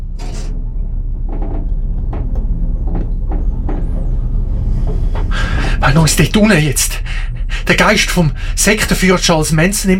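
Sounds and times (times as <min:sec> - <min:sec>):
scattered knocks and clunks: 0:00.0 - 0:06.8
elevator descending with low mechanical rumble: 0:00.0 - 0:09.9
speech: 0:05.8 - 0:09.9.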